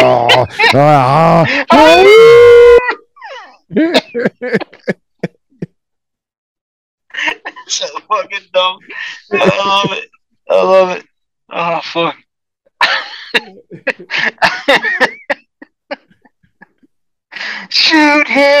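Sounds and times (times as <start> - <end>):
man growling like a werewolf: 0.0 - 1.5
laughter: 0.0 - 2.0, 2.6 - 5.7, 7.1 - 8.2, 8.8 - 10.1, 12.8 - 16.9
man howling like a werewolf: 0.0 - 3.0
speech: 0.4 - 2.8, 3.7 - 4.6, 7.8 - 12.2, 17.7 - 18.5.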